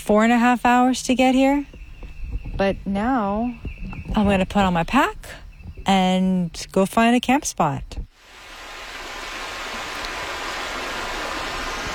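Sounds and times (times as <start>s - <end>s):
speech: 0.0s - 1.7s, 2.6s - 8.0s
river water flowing at a trail crossing: 8.2s - 11.9s.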